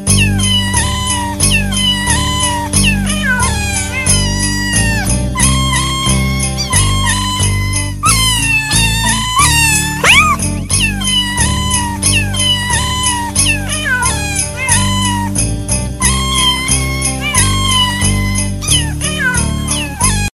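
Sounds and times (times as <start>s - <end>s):
cat meowing: 0.1s - 15.4s, 16.0s - 20.3s.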